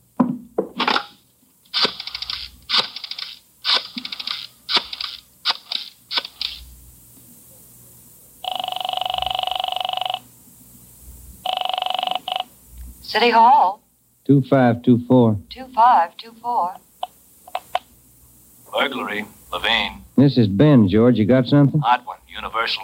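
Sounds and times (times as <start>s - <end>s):
telephone ringing tone: 8.4s - 10.3s, 11.4s - 12.5s
speech: 13.2s - 16.9s, 18.7s - 22.8s.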